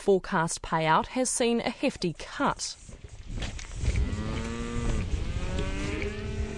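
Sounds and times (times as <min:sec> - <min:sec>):
speech: 0:00.0 - 0:03.5
dairy cows mooing on a farm near Rotorua: 0:03.8 - 0:06.5.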